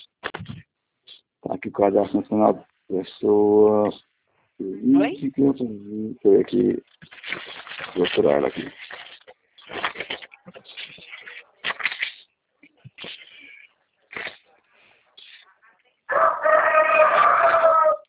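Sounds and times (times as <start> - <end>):
speech: 1.7 - 4.0, 4.6 - 8.8
rooster crowing: 16.1 - 18.0.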